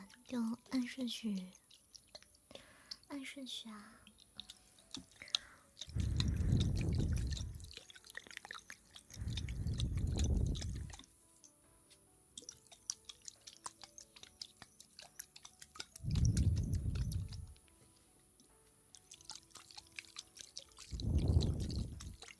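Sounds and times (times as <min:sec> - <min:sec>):
crisp chewing of snacks: 0:00.0 - 0:11.2, 0:12.4 - 0:22.3
speech: 0:00.3 - 0:01.6, 0:03.1 - 0:04.0
low soft rumbling noise: 0:09.2 - 0:10.9, 0:16.0 - 0:17.5, 0:20.9 - 0:22.2.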